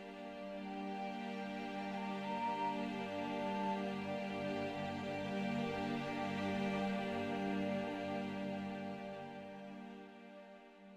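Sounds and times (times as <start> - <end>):
flute solo: 0.2 - 9.8.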